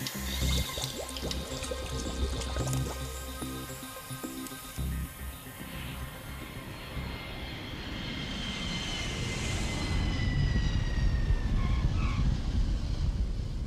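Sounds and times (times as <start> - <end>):
airplane approaching to land with broadband roar and high engine whine: 0.0 - 13.6.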